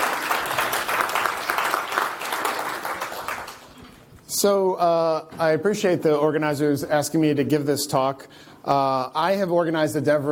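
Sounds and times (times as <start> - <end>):
crowd applauding: 0.0 - 3.8
speech: 4.4 - 10.3.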